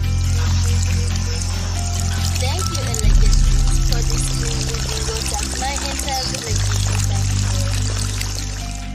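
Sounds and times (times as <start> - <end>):
water gushing from a well pump: 0.1 - 8.9.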